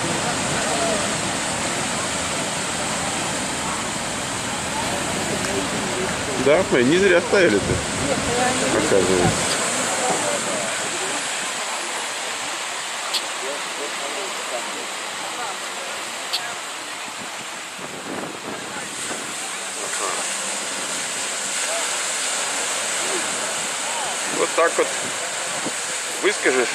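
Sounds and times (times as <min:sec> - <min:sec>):
ocean surf washing onto the shore of a coast: 0:00.0 - 0:26.7
speech: 0:06.5 - 0:09.5, 0:26.4 - 0:26.7.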